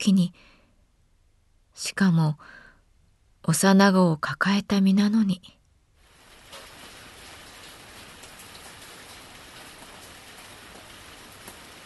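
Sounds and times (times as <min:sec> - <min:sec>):
speech: 0:00.0 - 0:00.5, 0:01.8 - 0:02.6, 0:03.4 - 0:05.6
steady rain falling with drops pattering on a surface: 0:06.0 - 0:11.8.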